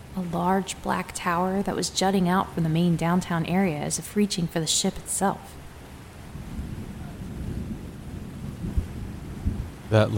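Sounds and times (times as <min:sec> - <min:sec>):
speech: 0:00.2 - 0:05.6, 0:09.9 - 0:10.1
rolling thunder from an approaching storm: 0:06.2 - 0:10.1.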